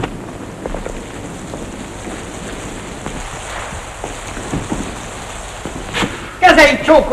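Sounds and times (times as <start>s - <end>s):
heavy rain pouring: 0.0s - 7.1s
drips and splashes: 0.1s - 6.4s
speech: 6.6s - 7.1s.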